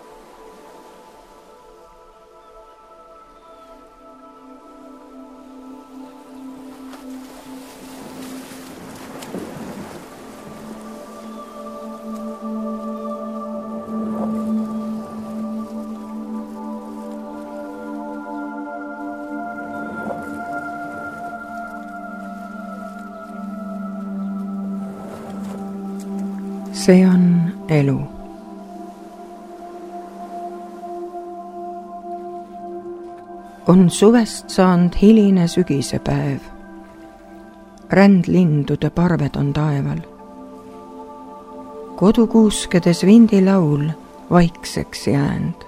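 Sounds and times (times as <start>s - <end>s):
sea waves surging: 0.0s - 45.6s
steady sustained droning musical tone: 0.0s - 45.6s
speech: 26.9s - 28.1s, 33.7s - 36.6s, 37.9s - 40.1s, 42.0s - 45.6s.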